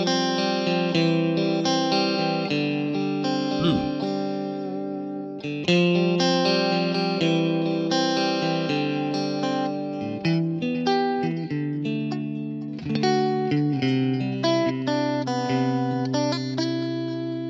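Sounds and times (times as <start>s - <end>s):
electric guitar through an amp profile on a Kemper Profiler playing ringing chords: 0.0s - 17.4s.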